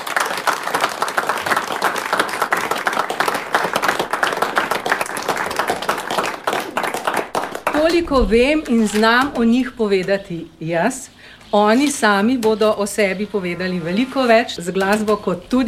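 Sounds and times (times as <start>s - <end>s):
audience applause for a folk music trio: 0.0s - 8.1s
speech: 8.0s - 15.6s.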